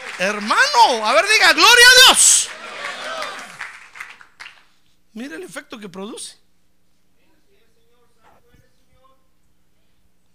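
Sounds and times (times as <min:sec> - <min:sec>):
congregation applauding: 0:00.0 - 0:04.8
speech: 0:00.2 - 0:02.6, 0:05.2 - 0:06.4.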